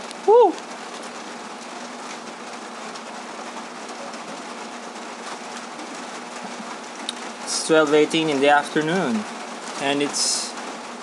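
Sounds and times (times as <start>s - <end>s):
steady rain pouring outdoors: 0.0s - 11.0s
faint bird cooing: 0.2s - 0.7s
speech: 0.3s - 0.7s, 7.7s - 10.5s.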